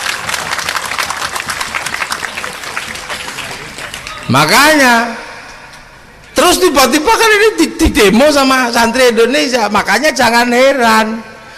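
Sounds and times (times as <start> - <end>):
audience applause at an Islamic religious lecture: 0.0 - 4.3
speech: 4.3 - 5.2, 6.4 - 11.3.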